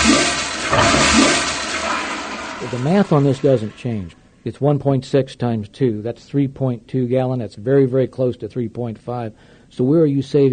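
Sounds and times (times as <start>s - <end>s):
low-flush toilet flushing: 0.0s - 4.3s
speech: 2.6s - 10.5s.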